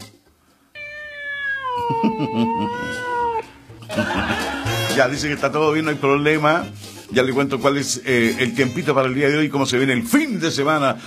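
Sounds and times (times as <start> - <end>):
cat meowing: 0.8 - 3.6
laughter: 1.8 - 3.1, 3.8 - 5.1
speech: 1.9 - 3.2, 4.0 - 11.0.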